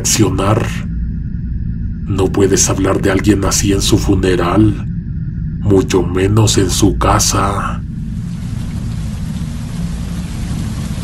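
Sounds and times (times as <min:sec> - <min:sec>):
speech: 0:00.0 - 0:00.9, 0:02.1 - 0:04.9, 0:05.6 - 0:07.8
deep continuous thunder rumbling: 0:00.0 - 0:11.0
heavy rain pouring: 0:07.4 - 0:11.0.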